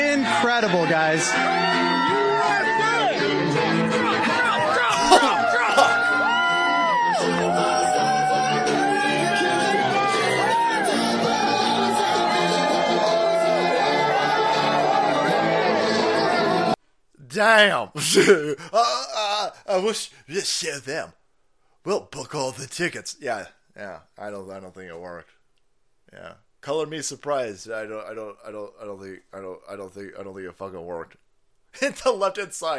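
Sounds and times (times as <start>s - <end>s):
large rally crowd cheering and shouting: 0.0s - 16.8s
speech: 0.4s - 2.2s, 17.4s - 21.2s, 21.8s - 25.4s, 26.1s - 32.7s
sharp yells: 4.5s - 12.2s
laughter: 4.7s - 6.2s, 18.0s - 19.2s.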